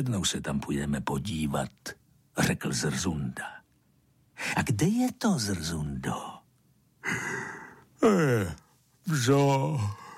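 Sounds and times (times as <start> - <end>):
speech: 0.0 - 3.6, 4.4 - 6.4, 7.0 - 10.0
person yawning: 7.0 - 8.7.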